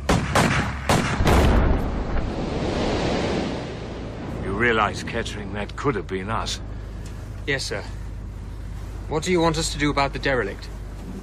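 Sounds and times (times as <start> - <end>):
rifle shots fired at a floating mine at sea: 0.0 - 1.8
low rush of noise: 1.5 - 11.2
speech: 4.6 - 6.7, 7.4 - 8.0, 9.1 - 11.2.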